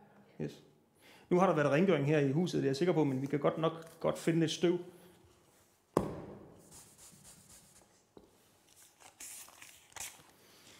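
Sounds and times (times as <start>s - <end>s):
speech: 0.4s - 0.7s, 1.3s - 5.0s
crumpling and rubbing a dirty 100-krone paper banknote: 8.6s - 10.7s.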